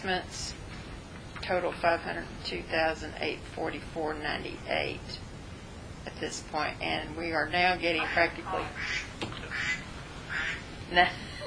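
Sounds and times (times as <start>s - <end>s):
speech: 0.0s - 0.6s, 1.4s - 5.2s, 6.1s - 9.8s, 10.9s - 11.3s
steady low noise: 0.0s - 11.4s
duck quacking: 7.9s - 10.6s.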